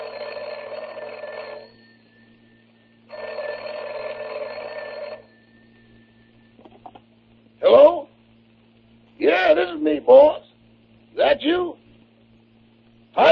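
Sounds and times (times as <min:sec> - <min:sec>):
telephone ringing with a long buzzing trill for a long-distance call: 0:00.0 - 0:06.8
faint steady hum: 0:00.0 - 0:13.2.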